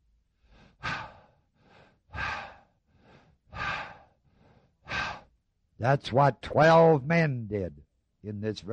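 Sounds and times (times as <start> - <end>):
heavy rhythmic breathing: 0.3 - 5.7
speech: 5.8 - 8.7.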